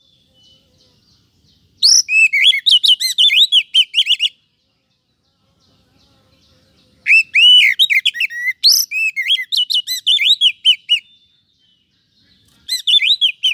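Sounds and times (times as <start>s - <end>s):
Oriental magpie-robin whistling and twittering: 1.8s - 4.4s, 7.0s - 11.8s, 12.6s - 13.5s.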